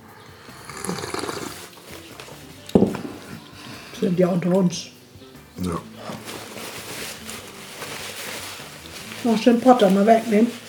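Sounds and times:
person slurping hot tea: 0.4 - 1.7
speech: 4.0 - 5.0, 5.6 - 6.0, 9.2 - 10.6.

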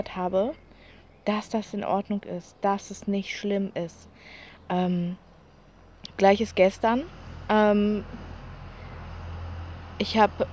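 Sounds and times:
speech: 0.0 - 5.2, 6.2 - 8.2, 10.0 - 10.5
tractor engine rumble: 0.0 - 10.5.

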